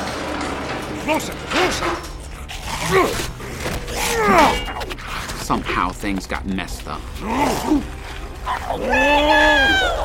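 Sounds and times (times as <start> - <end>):
big doors creaking open: 0.0 - 5.5
speech: 1.1 - 2.1, 2.9 - 3.3, 4.1 - 4.8, 5.5 - 10.0.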